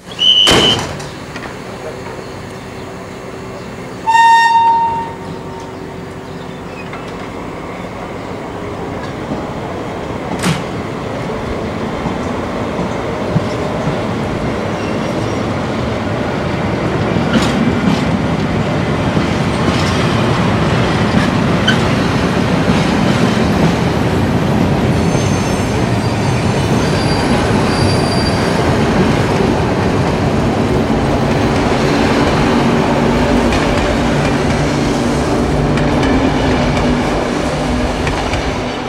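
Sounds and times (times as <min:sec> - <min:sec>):
train rumbling on rails: 0:00.0 - 0:38.8.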